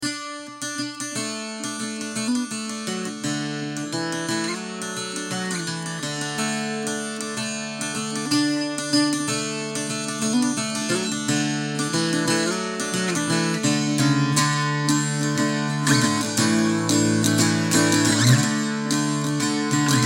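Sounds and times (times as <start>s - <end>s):
parlour bouzouki: 0.0s - 20.0s.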